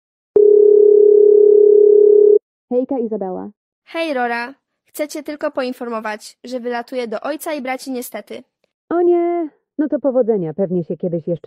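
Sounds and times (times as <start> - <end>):
steady electronic tone on a telephone line while placing a call: 0.4 - 2.4
speech: 2.7 - 11.4.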